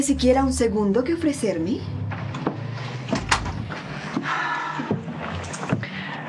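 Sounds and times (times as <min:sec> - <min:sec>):
speech: 0:00.0 - 0:02.3
steady low rumble in the room: 0:00.0 - 0:06.2
door pulled shut with wooden clunks: 0:02.2 - 0:03.9
door latch click: 0:03.1 - 0:03.6.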